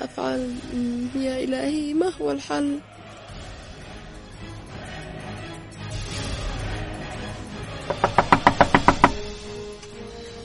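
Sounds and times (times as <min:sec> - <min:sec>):
speech: 0:00.1 - 0:03.0
sharp knocks on a door: 0:07.9 - 0:09.4.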